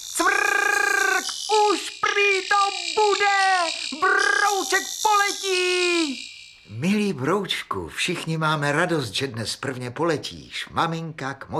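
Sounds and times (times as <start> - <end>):
person imitating crickets chirping: 0.0 - 7.9
speech: 3.0 - 11.5.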